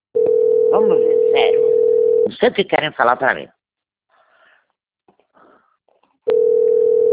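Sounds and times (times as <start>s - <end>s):
telephone line tone after a call drops: 0.2s - 2.3s, 6.3s - 7.1s
speech: 0.8s - 1.8s, 2.4s - 3.6s.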